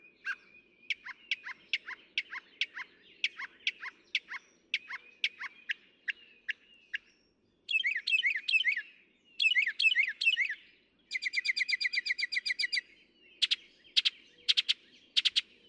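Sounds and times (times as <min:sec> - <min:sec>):
Northern mockingbird song: 0:00.0 - 0:15.6.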